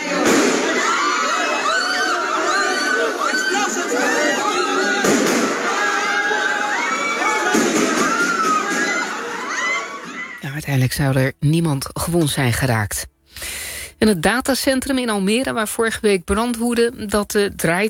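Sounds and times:
crowd shouting and screaming in an echoing hall at the parliament: 0.0 - 10.4
sharp gunshots in a parliament hall: 5.0 - 5.6
speech: 10.6 - 17.8.

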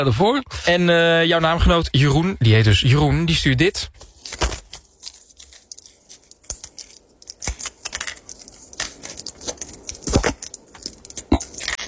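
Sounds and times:
speech: 0.0 - 4.5
pills and packaging rattling while sorting out medication: 4.0 - 11.8.

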